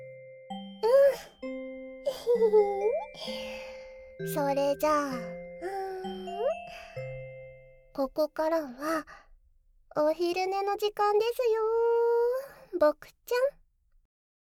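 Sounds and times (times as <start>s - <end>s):
electronic chime melody: 0.0s - 7.9s
woman speaking softly: 0.8s - 1.3s, 2.1s - 3.6s, 4.3s - 6.7s, 8.0s - 9.2s, 10.0s - 13.5s
speech: 2.3s - 5.4s, 8.0s - 9.2s, 10.0s - 11.8s, 12.8s - 13.6s.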